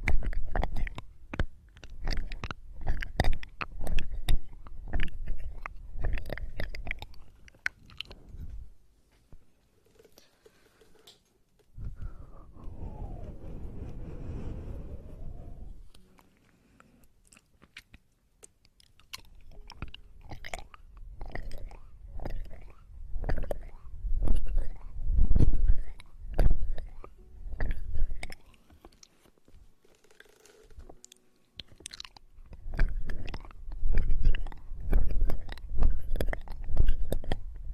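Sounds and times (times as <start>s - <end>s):
wet chewing and crunching against the ear: 0.0s - 8.2s, 17.2s - 29.2s, 30.0s - 37.5s
smooth rubbing sweep of ear massage: 11.8s - 17.1s.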